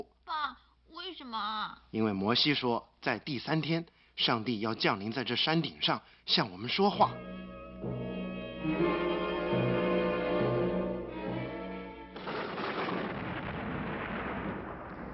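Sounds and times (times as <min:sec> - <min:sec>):
speech: 0:01.1 - 0:07.4
loud sustained horn-like blare with pulsing low notes: 0:07.1 - 0:11.7
heavy rolling rumble of thunder: 0:12.2 - 0:15.1.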